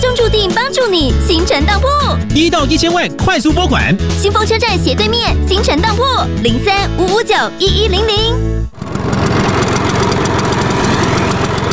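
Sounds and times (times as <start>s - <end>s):
speech: 0.8s - 9.0s
Vespa scooter engine idling: 8.7s - 11.7s.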